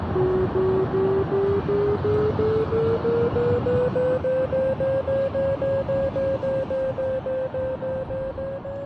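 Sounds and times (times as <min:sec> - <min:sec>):
flight simulator variometer beeping: 0:00.2 - 0:08.8.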